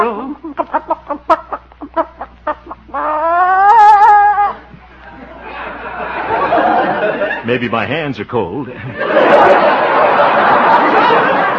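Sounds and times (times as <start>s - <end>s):
laughter: 0.0s - 7.8s, 8.7s - 11.5s
sitting hen clucking: 0.6s - 4.7s
speech: 7.6s - 11.5s.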